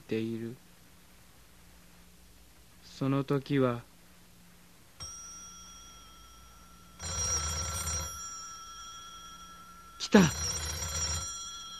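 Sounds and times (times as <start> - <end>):
speech: 0.1 - 0.6, 3.0 - 3.9, 10.1 - 10.4
telephone bell ringing: 5.0 - 11.7.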